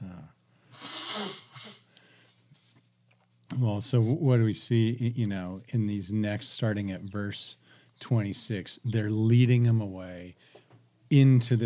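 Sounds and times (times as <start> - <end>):
person blowing nose because of allergies: 0.7 - 1.9
speech: 3.6 - 10.5, 11.1 - 11.6.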